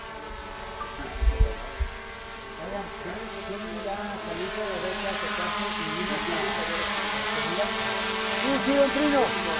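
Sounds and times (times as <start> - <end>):
drone hovering among a group of people: 0.0 - 9.5
speech: 8.5 - 9.5.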